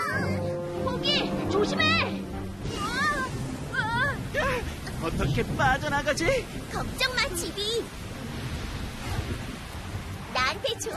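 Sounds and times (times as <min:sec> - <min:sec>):
steady dense rain in a storm: 0:00.0 - 0:10.9
speech: 0:01.6 - 0:02.2, 0:05.4 - 0:08.0, 0:10.6 - 0:10.9
low rolling thunder in a storm with lightning: 0:02.4 - 0:10.9.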